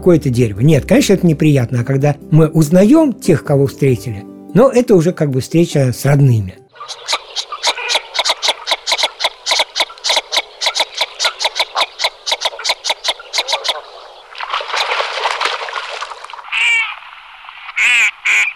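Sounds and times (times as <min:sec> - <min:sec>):
speech: 0:00.0 - 0:07.2
duck with an oddly built bill calling: 0:06.7 - 0:15.0, 0:16.5 - 0:17.1, 0:17.7 - 0:18.5.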